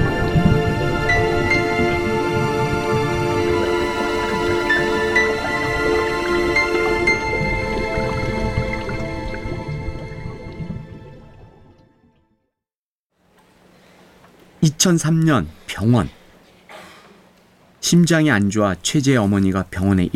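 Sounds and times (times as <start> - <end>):
water bubbling and gurgling in a bathtub: 0.0 - 12.2
speech: 14.7 - 16.2, 17.8 - 20.1.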